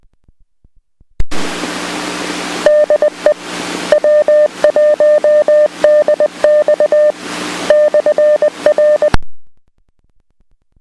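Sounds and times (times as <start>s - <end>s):
Morse code ID tones of the Salem radio repeater: 2.7s - 9.2s.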